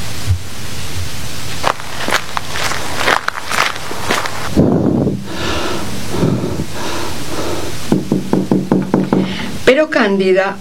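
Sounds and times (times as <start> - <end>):
windy noise: 0.0 - 10.6
footsteps of a woman running to a house: 1.5 - 9.4
speech: 9.8 - 10.6.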